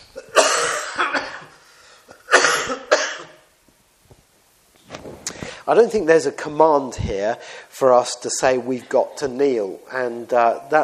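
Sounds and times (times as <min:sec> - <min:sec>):
heavy chesty coughing: 0:00.2 - 0:03.4
quiet breathing: 0:05.2 - 0:05.7, 0:07.4 - 0:07.8
speech: 0:05.7 - 0:10.8.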